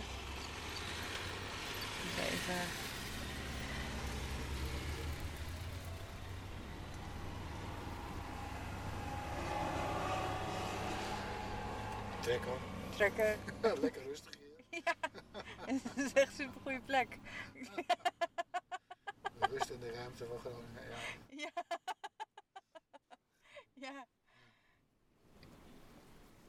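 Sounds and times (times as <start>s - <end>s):
motorcycle engine rumbling by: 0.0s - 13.8s
broad road noise: 0.0s - 21.3s
speech: 2.4s - 2.9s, 12.2s - 15.0s, 15.6s - 18.1s, 19.5s - 21.9s, 23.8s - 24.1s
laughter: 14.8s - 16.2s, 17.6s - 20.1s, 21.0s - 23.2s.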